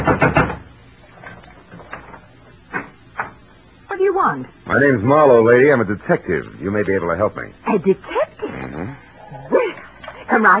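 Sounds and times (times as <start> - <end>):
loud knocking on a front door: 0.0 - 0.7
speech: 4.4 - 9.0, 10.3 - 10.5.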